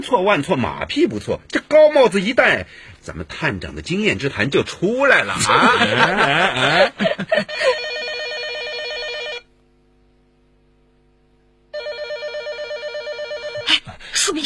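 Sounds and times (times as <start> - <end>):
speech: 0.0 - 7.8
laughter: 5.2 - 7.9
telephone ringing with bright trilling bell-like tone: 7.6 - 9.5, 11.7 - 13.7.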